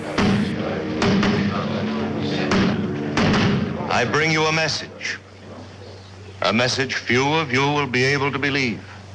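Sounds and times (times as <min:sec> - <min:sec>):
loud booming drum bangs: 0:00.1 - 0:01.5, 0:02.5 - 0:03.8
speech: 0:04.0 - 0:05.2, 0:06.4 - 0:08.9.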